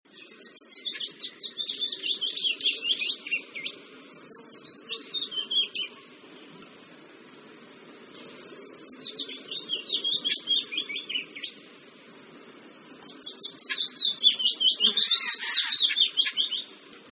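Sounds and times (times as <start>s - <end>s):
willow warbler singing: 0.1s - 17.0s.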